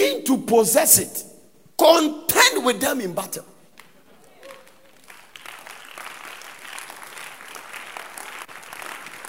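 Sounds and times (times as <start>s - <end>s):
speech: 0.3s - 3.6s
congregation clapping: 3.7s - 9.2s.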